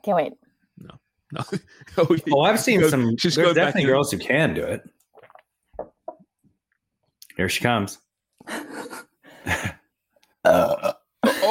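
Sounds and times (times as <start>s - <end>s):
speech: 0.0s - 5.0s, 7.4s - 9.7s, 10.4s - 11.0s
short croaky burps: 0.8s - 1.4s, 10.4s - 11.1s.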